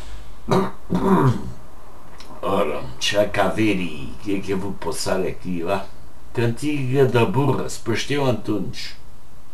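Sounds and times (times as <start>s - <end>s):
speech: 0.5s - 1.5s, 3.1s - 9.0s
coughing with phlegm: 0.5s - 1.6s
throat clearing from someone with a cough and phlegm: 0.5s - 1.6s.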